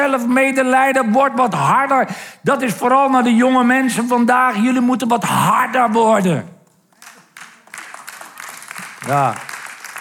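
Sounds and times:
speech: 0.0s - 6.6s, 9.1s - 9.5s
few older audience members clapping: 6.7s - 9.9s.

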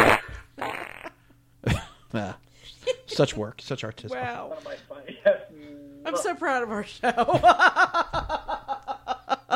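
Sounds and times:
loud fart sound effects used as a stinger: 0.0s - 1.2s
speech: 2.1s - 8.3s
laughter: 7.0s - 9.5s.

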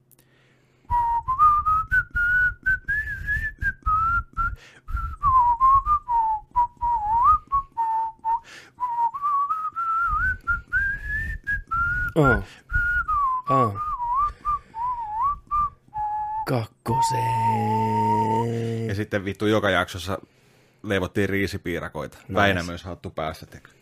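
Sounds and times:
breaths: 0.2s - 1.0s, 4.5s - 5.2s, 8.4s - 8.8s, 12.0s - 12.8s, 14.2s - 15.0s, 18.4s - 18.9s, 20.2s - 20.9s, 23.6s - 23.8s
person whistling a TV theme tune: 0.9s - 18.6s
speech: 12.2s - 12.6s, 13.5s - 13.8s, 16.5s - 23.8s.

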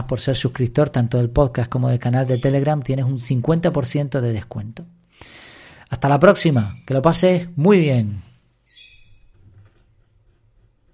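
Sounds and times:
speech: 0.0s - 8.3s
small bird chirping: 8.6s - 9.4s.

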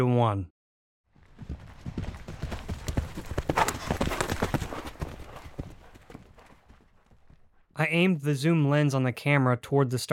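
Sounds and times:
speech: 0.0s - 0.6s, 7.8s - 10.1s
horse hooves clip-clopping on a hard surface: 1.1s - 7.7s.

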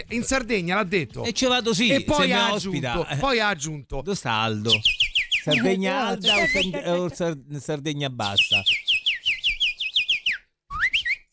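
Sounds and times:
speech: 0.1s - 8.8s
laughter: 2.0s - 2.9s, 5.5s - 7.4s
person whistling imitating a goldfinch: 4.8s - 6.8s, 8.7s - 11.3s.

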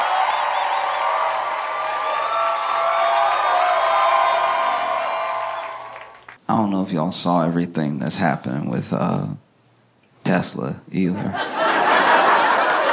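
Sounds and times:
audience whoops and shouts: 0.0s - 6.2s
live audience clapping and cheering: 0.0s - 6.4s, 11.6s - 12.9s
speech: 6.7s - 9.4s, 10.3s - 11.5s
laughter: 11.2s - 12.9s.

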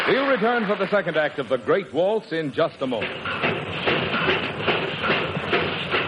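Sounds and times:
speech: 0.1s - 3.9s
early steam locomotive chugging with hissing puffs: 2.7s - 6.0s.

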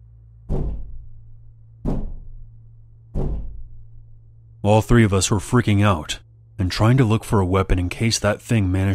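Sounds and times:
low steady hum: 0.0s - 8.9s
heavy banging on a solid wooden door: 0.5s - 1.2s, 1.8s - 4.0s
speech: 4.6s - 8.9s.

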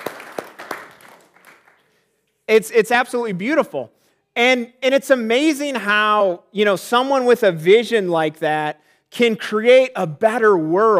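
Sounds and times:
audience applause: 0.0s - 1.8s
speech: 2.5s - 10.9s.

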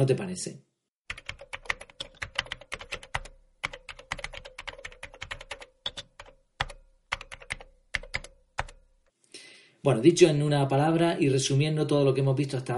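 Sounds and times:
speech: 0.0s - 0.6s, 9.8s - 12.7s
rapid typing on a computer keyboard: 1.1s - 8.8s.

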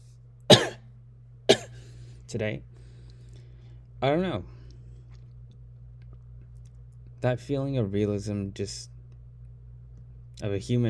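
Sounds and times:
low steady hum: 0.0s - 10.8s
person coughing: 0.5s - 0.9s, 1.5s - 1.8s
speech: 2.3s - 2.7s, 4.0s - 4.6s, 7.2s - 8.9s, 10.4s - 10.8s.

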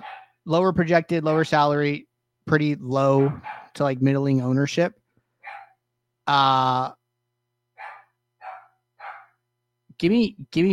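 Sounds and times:
dog barking: 0.0s - 0.4s, 3.2s - 3.8s, 5.4s - 5.8s, 7.8s - 9.4s
speech: 0.5s - 5.0s, 6.3s - 7.0s, 10.0s - 10.7s.

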